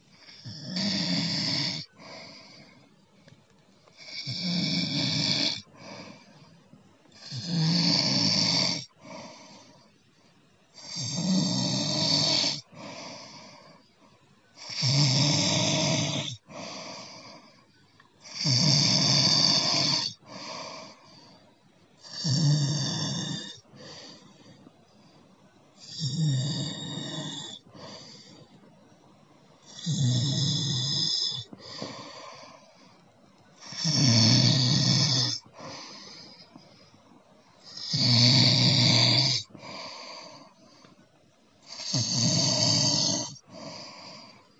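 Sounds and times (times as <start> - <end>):
person snoring: 0.2 - 2.8, 4.0 - 6.2, 7.2 - 9.5, 10.8 - 13.7, 14.6 - 17.5, 18.2 - 21.0, 22.0 - 24.1, 25.8 - 28.2, 29.6 - 32.6, 33.6 - 36.4, 37.6 - 40.6, 41.6 - 44.4.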